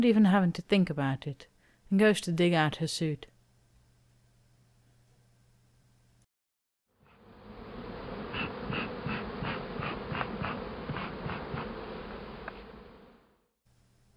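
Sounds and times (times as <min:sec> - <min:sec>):
speech: 0:00.0 - 0:03.3
honeybee swarm taking flight with a new queen buzzing: 0:07.1 - 0:13.3.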